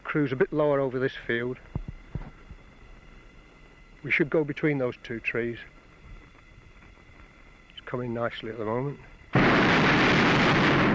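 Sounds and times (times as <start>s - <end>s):
speech: 0.1s - 1.8s, 4.0s - 5.8s, 7.9s - 9.8s
hot air balloon burner roaring over a field: 9.3s - 10.9s.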